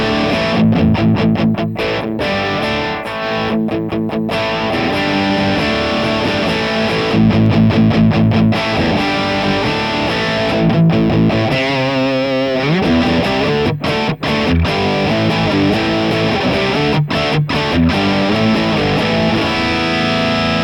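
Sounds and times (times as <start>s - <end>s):
overdriven electric guitar playing crunchy chords and riffs through an amp's vintage channel: 0.0s - 20.6s.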